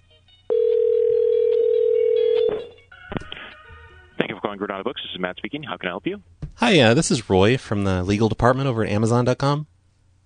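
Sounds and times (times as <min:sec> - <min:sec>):
telephone dial tone: 0:00.5 - 0:02.7
speech: 0:04.6 - 0:09.7.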